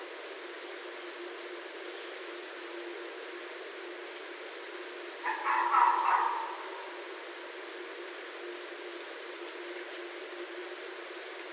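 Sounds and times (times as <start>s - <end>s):
red fox rasping drawn-out bark: 5.2s - 7.0s.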